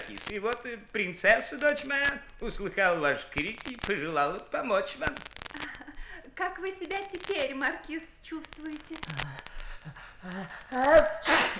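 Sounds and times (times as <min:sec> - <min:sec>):
speech: 0:00.1 - 0:11.5
person sneezing: 0:11.0 - 0:11.5.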